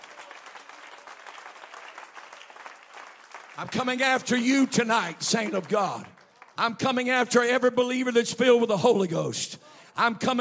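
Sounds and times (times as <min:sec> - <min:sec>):
congregation clapping hands: 0:00.0 - 0:07.6
speech: 0:03.6 - 0:10.3.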